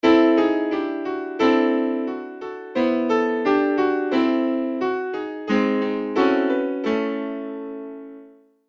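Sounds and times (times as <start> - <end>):
piano: 0.0 - 8.6.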